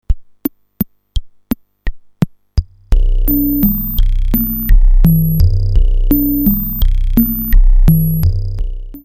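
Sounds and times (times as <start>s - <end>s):
resonant ticking texture: 2.6s - 9.0s.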